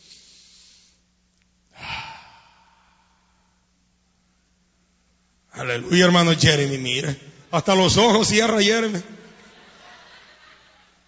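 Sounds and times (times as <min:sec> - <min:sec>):
deep breathy exhale: 0:00.0 - 0:01.0, 0:01.7 - 0:03.6
speech: 0:05.6 - 0:09.2
laughter: 0:09.3 - 0:11.0.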